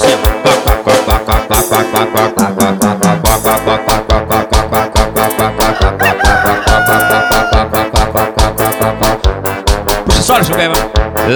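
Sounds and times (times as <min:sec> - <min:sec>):
music with pounding beats: 0:00.0 - 0:11.3
rooster crowing: 0:05.6 - 0:07.8.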